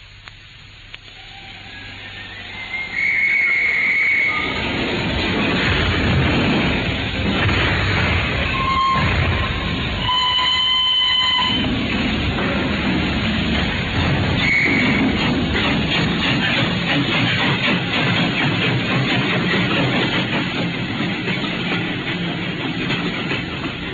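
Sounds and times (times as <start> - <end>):
steam train pulling away from Paddington, rumbling and clattering: 0.0 - 23.9
brief high whistle-like tone: 1.2 - 4.7, 8.5 - 11.6, 14.4 - 15.0.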